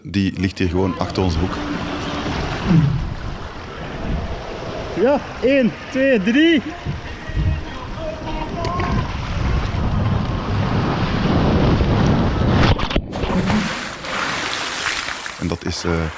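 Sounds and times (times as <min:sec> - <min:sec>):
indistinct voices at an outdoor water park: 0:00.0 - 0:09.2
speech: 0:00.1 - 0:03.0, 0:05.0 - 0:07.0, 0:15.5 - 0:16.1
splashing flowing water at an outdoor swimming pool with waterslides: 0:00.8 - 0:10.2, 0:13.1 - 0:16.1
wind buffeting the microphone: 0:01.1 - 0:13.8.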